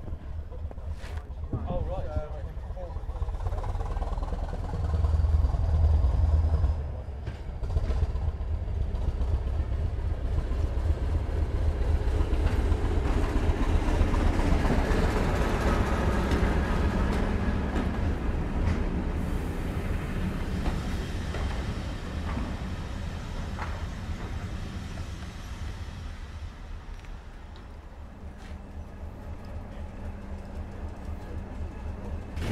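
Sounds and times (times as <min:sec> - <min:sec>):
Hampshire two-car diesel multiple unit train running on rails: 0:00.0 - 0:32.5.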